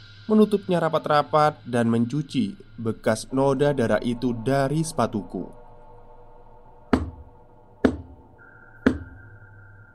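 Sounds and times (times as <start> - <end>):
quiet hum: 0.0 - 9.9
speech: 0.3 - 5.6
heavy knocks on a door: 6.9 - 7.2, 7.8 - 8.2.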